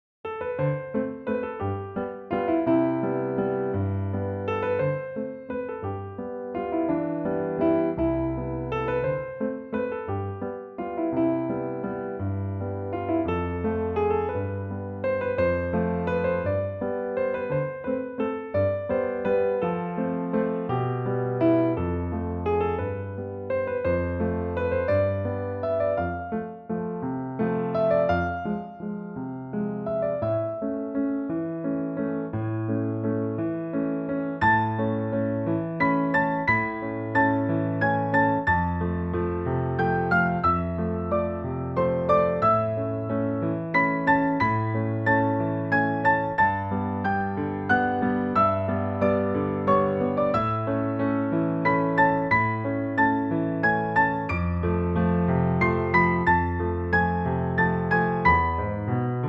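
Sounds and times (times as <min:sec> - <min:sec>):
piano waltz: 0:00.2 - 0:59.2.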